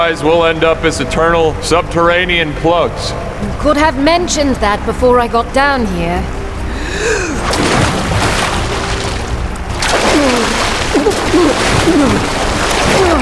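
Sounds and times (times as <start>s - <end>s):
speech: 0.0s - 7.2s, 11.0s - 13.2s
gasps: 6.7s - 7.4s
rushing underground river water splashing: 7.4s - 13.2s.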